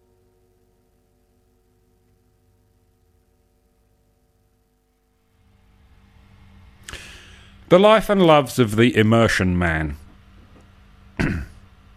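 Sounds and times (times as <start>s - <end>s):
speech: 7.7s - 10.0s
gravelly throat clearing: 11.2s - 11.7s.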